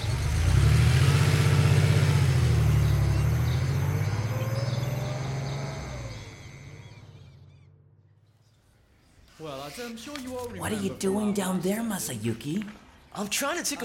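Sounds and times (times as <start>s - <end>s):
car engine droning as the vehicle drives: 0.0s - 8.2s
speech: 9.4s - 13.8s.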